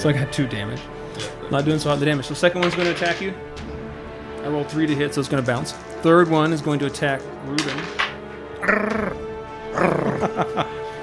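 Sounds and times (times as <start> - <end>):
speech: 0.0 - 3.7, 4.4 - 8.0, 8.6 - 9.2
dog growling sound effect from a soundboard: 8.6 - 10.3
laughter: 8.6 - 11.0.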